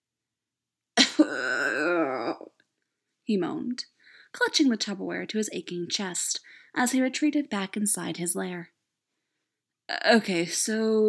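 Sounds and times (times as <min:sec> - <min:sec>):
person vocally imitating a coughing fit: 0:01.0 - 0:01.7
speech: 0:03.3 - 0:08.8, 0:09.9 - 0:11.0.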